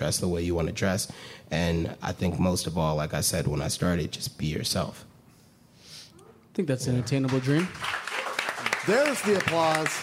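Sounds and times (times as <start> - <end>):
speech: 0.0 - 5.1, 6.6 - 8.0, 8.8 - 10.0
audience clapping: 7.0 - 10.0.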